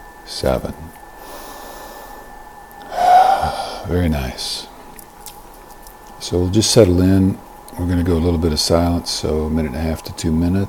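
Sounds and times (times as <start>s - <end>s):
speech: 0.3s - 1.0s, 3.9s - 4.7s, 6.2s - 10.6s
slow exhaling breath during a guided mindfulness breathing exercise: 1.2s - 4.0s.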